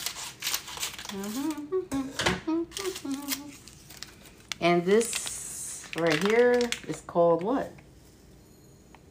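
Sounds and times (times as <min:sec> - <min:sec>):
powder packet torn open, crinkling and rustling: 0:00.0 - 0:01.6, 0:02.7 - 0:07.5
speech: 0:01.1 - 0:03.7, 0:04.6 - 0:05.3, 0:06.0 - 0:07.8.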